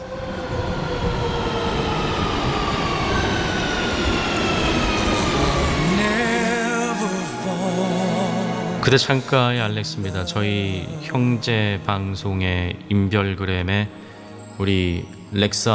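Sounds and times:
train rumbling: 0.0 - 9.4
low hissing tone: 0.4 - 12.4
train brakes squealing: 1.2 - 9.2
speech: 8.9 - 14.0, 14.6 - 15.7.

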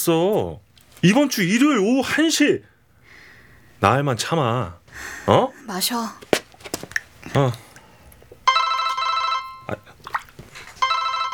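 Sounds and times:
speech: 0.0 - 2.7, 3.8 - 6.3, 7.2 - 7.6
telephone ringing in electronic bursts: 8.4 - 9.8, 10.8 - 11.3.

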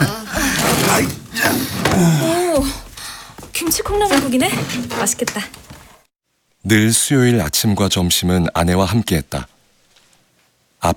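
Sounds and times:
washing machine churning with creaks and low groaning tones: 0.0 - 6.1
speech: 3.8 - 5.6, 6.6 - 9.5.

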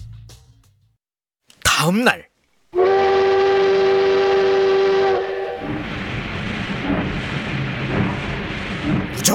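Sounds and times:
speech: 1.8 - 2.8, 9.2 - 9.3
loud steady train whistle blowing: 2.8 - 7.1
moving train rumbling and clattering: 5.6 - 9.3.

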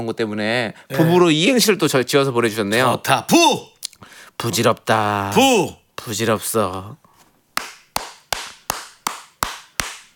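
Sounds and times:
speech: 0.0 - 3.7, 4.4 - 7.0
hands clapping: 7.6 - 10.1.

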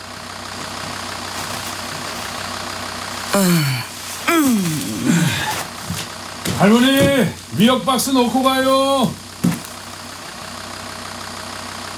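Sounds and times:
parked truck engine idling: 0.0 - 11.9
speech: 3.3 - 5.5, 6.6 - 9.2
person calling out: 3.3 - 9.6.

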